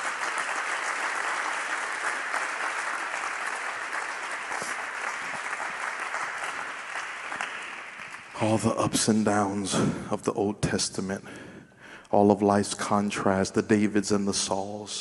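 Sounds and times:
congregation clapping hands: 0.0 - 9.0
speech: 8.4 - 11.4, 12.1 - 15.0.

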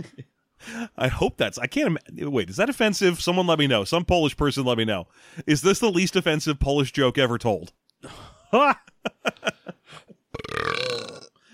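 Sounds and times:
speech: 0.0 - 10.0
person burping into the microphone: 10.3 - 11.5.

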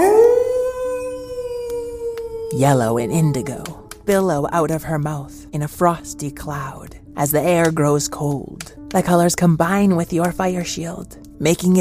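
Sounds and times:
wolf howling: 0.0 - 4.1
speech: 2.6 - 11.7.

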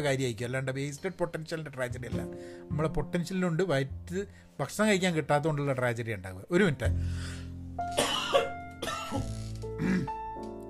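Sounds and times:
speech: 0.0 - 8.0
person coughing: 8.0 - 10.2.

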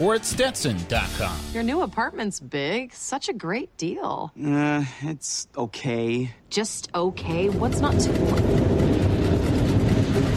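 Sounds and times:
speech: 0.0 - 8.9
subway train rumbling beneath an apartment: 7.2 - 10.3.

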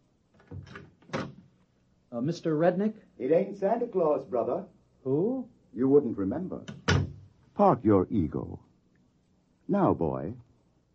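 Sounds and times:
door creaking open in a deserted skyscraper: 0.4 - 1.5, 6.6 - 7.3
speech: 2.2 - 6.8, 7.6 - 8.7, 9.7 - 10.4
door latch and handle rattling: 6.7 - 7.2.

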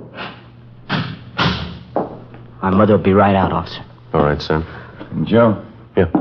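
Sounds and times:
door being shut: 0.8 - 2.4
speech: 2.6 - 6.2.

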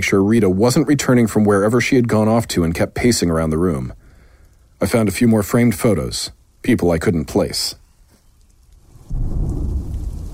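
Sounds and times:
speech: 0.0 - 4.0, 4.8 - 7.8
heavy rain: 0.0 - 10.3
distant thunder: 8.8 - 10.3.

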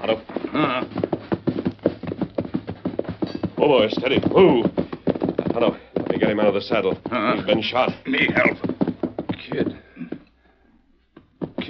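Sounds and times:
speech: 0.0 - 1.1, 3.6 - 4.8, 5.6 - 8.7, 9.5 - 9.8
horse trotting with hooves clip-clopping: 0.0 - 11.6.

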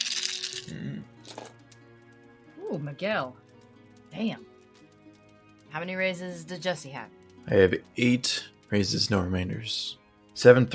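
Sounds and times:
dice clattering and rattling across a hard surface: 0.0 - 1.7
speech: 2.7 - 3.4, 4.1 - 4.5, 5.7 - 10.7.

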